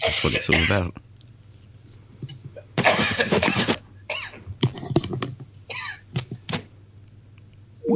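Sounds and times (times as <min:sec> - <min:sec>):
man coughing in a fit: 0:00.0 - 0:00.9, 0:02.7 - 0:04.5, 0:05.7 - 0:06.0
speech: 0:00.1 - 0:01.1.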